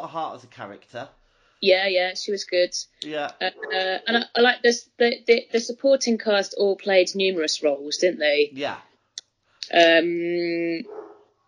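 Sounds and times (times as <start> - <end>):
speech: 0.0 - 8.9, 9.7 - 11.0
dog letting out a drawn-out bark into a howl-like cry: 10.8 - 11.3.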